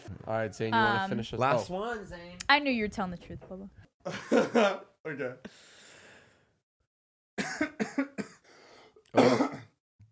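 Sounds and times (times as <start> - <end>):
speech: 0.3 - 5.7
raspy breath: 5.5 - 6.6, 8.4 - 9.0
person coughing nervously: 7.4 - 8.5, 9.2 - 9.8.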